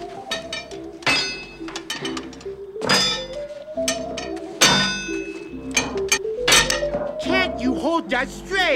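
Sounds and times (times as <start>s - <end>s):
hammer striking metal while forging in a foundry: 0.3s - 7.1s
speech: 8.1s - 8.7s.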